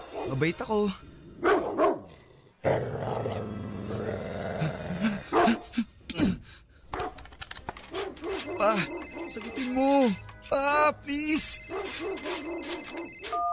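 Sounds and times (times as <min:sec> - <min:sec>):
speech: 0:00.3 - 0:01.8, 0:08.7 - 0:13.5
dog barking and growling at a person in a stalled car: 0:01.2 - 0:05.8, 0:07.9 - 0:09.6, 0:11.7 - 0:13.2.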